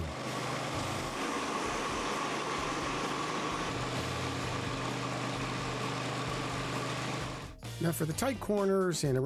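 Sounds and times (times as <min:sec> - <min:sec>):
concrete floor grinder running: 0:00.0 - 0:07.6
speech: 0:07.8 - 0:09.2.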